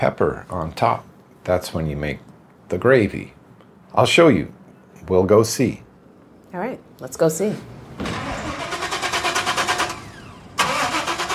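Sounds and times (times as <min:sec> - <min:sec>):
speech: 0:00.0 - 0:05.8, 0:06.5 - 0:08.1
pickup truck loaded with junk cranking and starting into running idle: 0:08.0 - 0:11.3.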